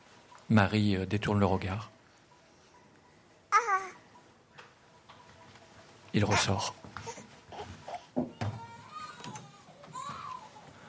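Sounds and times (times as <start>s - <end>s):
speech: 0.5s - 2.0s, 6.2s - 6.8s
infant wailing in short wavering cries: 3.5s - 4.0s, 6.2s - 10.6s.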